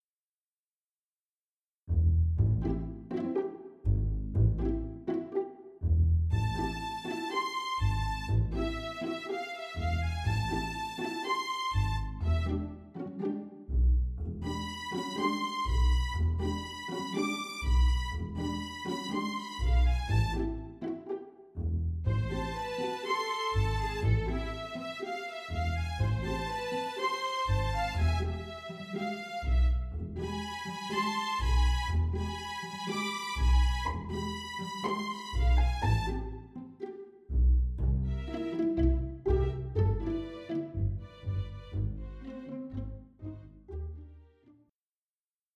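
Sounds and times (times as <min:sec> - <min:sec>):
string orchestra quintet playing: 0:02.4 - 0:21.4, 0:22.0 - 0:44.6.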